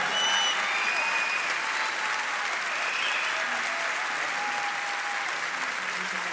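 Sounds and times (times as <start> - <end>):
faint whistles from a crowd: 0.0 - 2.0, 2.7 - 3.4
loud applause from a large crowd: 0.0 - 6.3.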